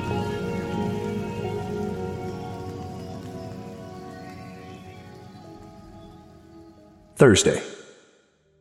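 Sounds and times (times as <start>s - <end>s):
heavy rain drumming on an uninsulated tin roof at night: 0.0s - 7.1s
speech: 7.2s - 7.8s.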